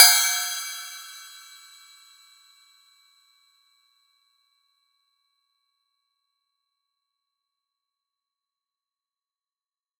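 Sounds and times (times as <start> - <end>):
short cymbal hit: 0.0 - 1.6.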